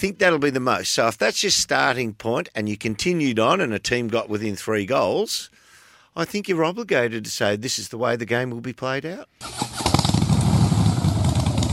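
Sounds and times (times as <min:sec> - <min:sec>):
speech: 0:00.0 - 0:05.6, 0:06.2 - 0:10.0
Harley-Davidson Pan America motorcycle engine revving: 0:09.4 - 0:11.7.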